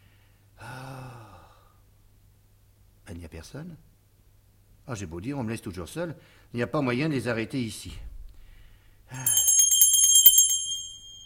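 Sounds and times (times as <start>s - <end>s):
speech: 3.1s - 4.0s, 4.8s - 8.1s, 9.1s - 9.4s
small hand bell rung in a stage comedy: 9.1s - 11.2s.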